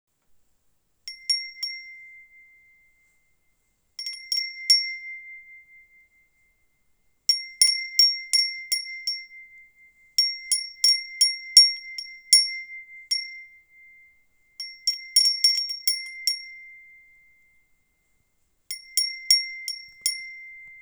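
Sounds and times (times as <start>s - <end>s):
glass furin wind chime bell ringing: 1.1s - 3.0s, 4.0s - 6.2s, 7.3s - 17.5s, 18.7s - 20.8s.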